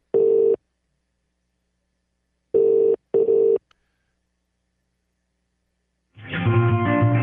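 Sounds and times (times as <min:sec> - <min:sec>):
British telephone ringing tone: 0:00.1 - 0:00.6, 0:02.6 - 0:03.6.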